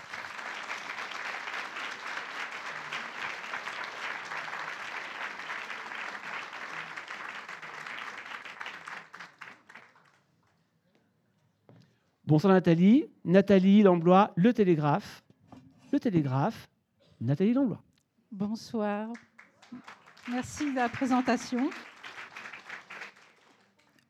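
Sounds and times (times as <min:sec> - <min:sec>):
large audience applauding a guest speaker: 0:00.0 - 0:10.2, 0:19.2 - 0:23.9
speech: 0:12.3 - 0:15.2, 0:15.9 - 0:21.9.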